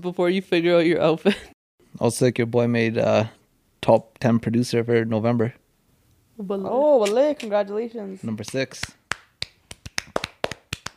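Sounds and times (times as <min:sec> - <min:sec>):
speech: 0:00.0 - 0:05.6, 0:06.4 - 0:09.0
hands clapping in applause: 0:08.4 - 0:10.9.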